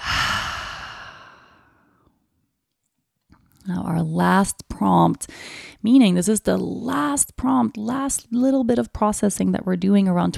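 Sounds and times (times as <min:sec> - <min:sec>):
open-mouth exhale from a guided breathing exercise: 0:00.0 - 0:01.8
speech: 0:03.7 - 0:10.3.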